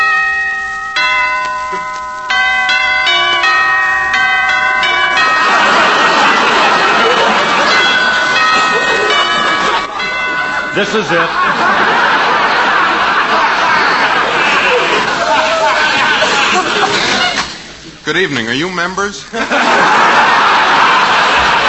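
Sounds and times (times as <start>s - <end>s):
apartment doorbell chiming: 0.0s - 13.7s
bustling crowd chattering: 1.7s - 21.6s
laughter: 4.7s - 18.0s, 19.2s - 21.6s
speech: 10.8s - 11.6s, 18.1s - 20.6s.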